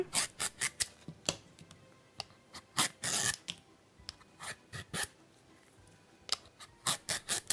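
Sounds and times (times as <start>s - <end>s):
knife peeling pumpkin skin: 0.0s - 1.0s, 2.6s - 3.5s, 4.4s - 5.2s, 6.3s - 7.5s.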